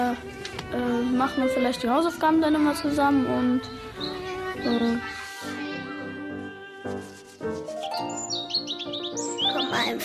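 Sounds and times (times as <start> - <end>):
speech: 0.0 - 5.6, 9.8 - 10.0
birds chirping in high twittering bursts: 3.2 - 5.2, 7.7 - 10.0.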